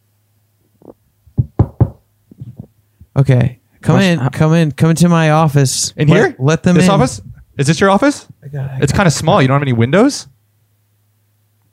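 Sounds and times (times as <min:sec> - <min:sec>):
firm knocks on a door: 0:01.3 - 0:02.0
speech: 0:03.2 - 0:10.3.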